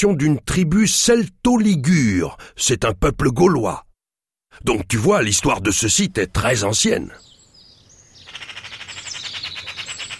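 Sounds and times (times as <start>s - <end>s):
speech: 0.0s - 3.9s, 4.6s - 7.3s
magpie harsh rapid chattering rattle: 8.1s - 10.1s.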